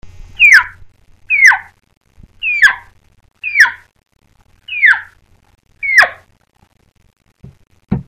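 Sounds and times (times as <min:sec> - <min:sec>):
elk calf chirp made by mouth: 0:00.4 - 0:01.7, 0:02.4 - 0:03.8, 0:04.7 - 0:05.1, 0:05.8 - 0:06.3.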